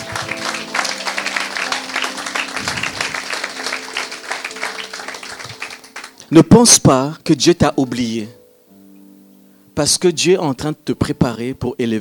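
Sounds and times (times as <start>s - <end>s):
low hum of congregation crowd noise: 0.0s - 5.6s
congregation applauding and acclaiming during a sermon: 0.0s - 6.5s
speech: 6.3s - 8.4s, 9.8s - 11.9s.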